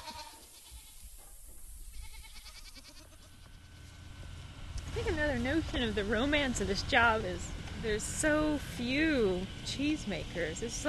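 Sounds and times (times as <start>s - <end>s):
goats bleating: 0.0s - 1.0s, 1.9s - 3.9s
outdoor hum: 0.0s - 10.8s
speech: 5.0s - 10.8s.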